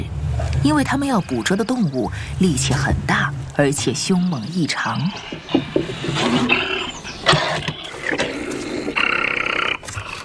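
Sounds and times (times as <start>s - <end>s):
speech: 0.6s - 6.7s
bear roaring and snarling: 5.2s - 10.2s.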